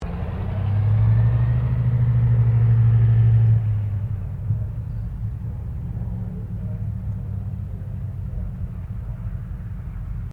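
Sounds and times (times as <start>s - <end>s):
1945 Douglas DC3 commercial aircraft taxiing: 0.0s - 10.3s.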